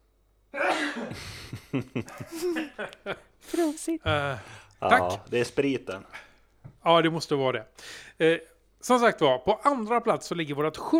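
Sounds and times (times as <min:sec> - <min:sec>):
sneeze: 0:00.6 - 0:01.1
laughter: 0:00.6 - 0:06.2
speech: 0:01.0 - 0:10.9.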